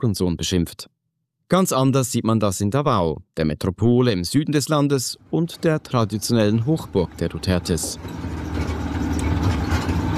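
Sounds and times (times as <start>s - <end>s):
speech: 0.0s - 8.4s
motorcycle tricycle with metal cabin engine rumbling on gravel roads: 5.4s - 10.1s.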